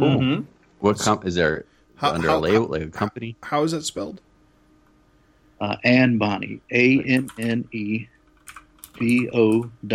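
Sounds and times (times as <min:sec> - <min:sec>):
speech: 0:00.0 - 0:04.3, 0:05.6 - 0:08.1, 0:09.0 - 0:09.9
typing on a computer keyboard: 0:07.2 - 0:07.6, 0:08.3 - 0:09.6.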